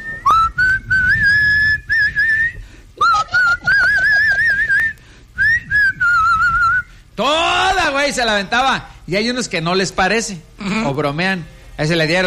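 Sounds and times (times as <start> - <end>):
person whistling a slow movie theme melody on the radio: 0.0 - 6.9
speech: 8.1 - 12.2.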